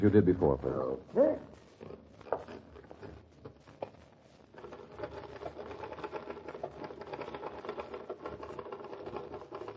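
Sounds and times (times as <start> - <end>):
speech: 0.0 - 1.4
typewriter keys typing: 4.6 - 9.7.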